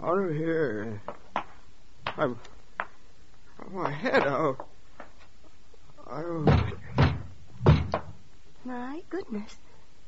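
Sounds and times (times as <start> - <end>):
speech: 0.0 - 1.2, 2.2 - 2.6, 3.6 - 4.7, 6.1 - 6.8, 8.6 - 9.7
loud heavy pounding on a door by the police: 6.4 - 8.2.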